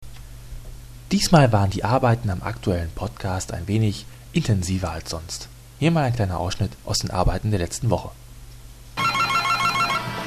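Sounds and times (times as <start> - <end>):
speech: 1.1 - 8.2
telephone with bright electronic ringtone ringing: 9.0 - 10.2.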